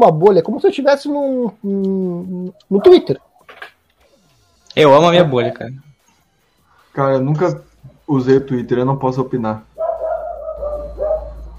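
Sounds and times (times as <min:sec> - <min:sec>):
speech: 0:00.0 - 0:03.7, 0:04.8 - 0:05.9, 0:07.0 - 0:09.7
dog barking in drawn-out whiny bursts: 0:02.7 - 0:03.2, 0:09.8 - 0:11.5.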